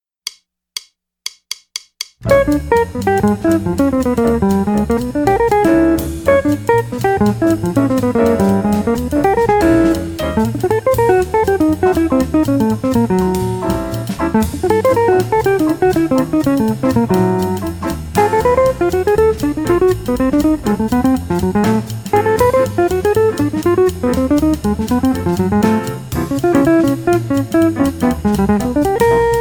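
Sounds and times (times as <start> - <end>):
fast guitar licks: 2.2 - 29.3.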